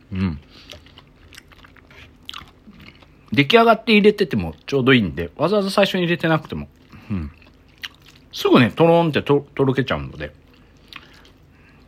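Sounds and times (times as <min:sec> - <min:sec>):
chewing mochi rice cake from shabu-shabu hot pot: 0:00.2 - 0:03.5, 0:06.4 - 0:08.4, 0:10.1 - 0:11.8
speech: 0:03.4 - 0:07.4, 0:08.4 - 0:10.4.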